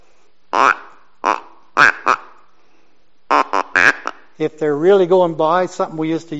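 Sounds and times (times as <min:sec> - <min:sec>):
duck call blown imitating duck quacks: 0:00.5 - 0:02.4, 0:03.3 - 0:04.3
speech: 0:04.4 - 0:06.3.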